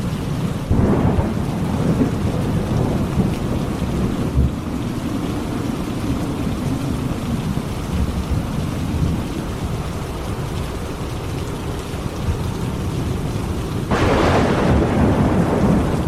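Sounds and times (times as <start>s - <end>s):
steady rain in a thunderstorm: 0.0s - 16.0s
deep rolling thunder in a thunderstorm: 0.6s - 6.8s, 13.8s - 16.0s
loud crack of thunder: 0.7s - 4.6s, 13.9s - 16.0s.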